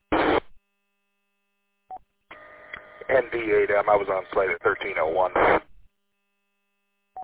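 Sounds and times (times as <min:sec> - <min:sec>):
sustained buzzy tone over crackly radio static: 0:00.0 - 0:00.5, 0:02.3 - 0:05.7
county 911 radio dispatch paging tones: 0:02.3 - 0:05.6
speech: 0:03.1 - 0:05.7.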